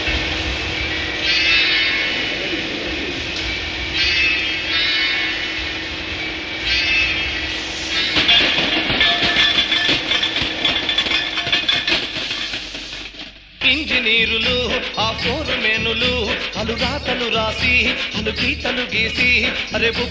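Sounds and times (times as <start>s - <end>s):
steam train engine running on rails: 0.0s - 13.5s
steam train clattering on rails: 0.0s - 20.1s
speech: 15.1s - 20.1s.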